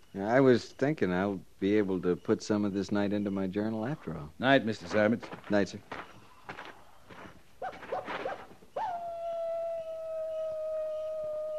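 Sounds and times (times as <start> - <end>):
speech: 0.2 - 6.1
coyote yipping and howling: 7.6 - 11.5.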